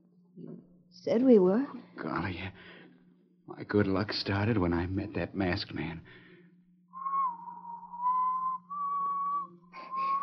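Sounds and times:
speech: 1.0 - 2.8, 3.5 - 6.2
person whistling a tune: 7.0 - 10.2.

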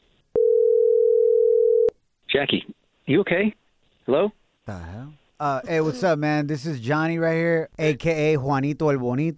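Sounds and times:
phone call ringing tone: 0.4 - 1.9
speech: 2.4 - 9.3.

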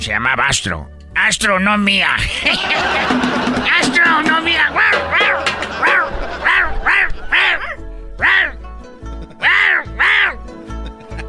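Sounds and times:
speech: 0.0 - 6.2
laughter: 2.2 - 7.8, 10.6 - 11.2
person imitating a barking dog: 4.7 - 8.6, 9.4 - 10.5.

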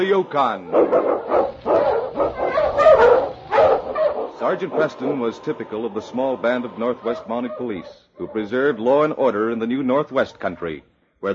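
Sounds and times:
speech: 0.0 - 2.4, 4.4 - 11.3
sled dog barking loudly with whining yelping edge: 0.6 - 5.4, 6.8 - 9.0.

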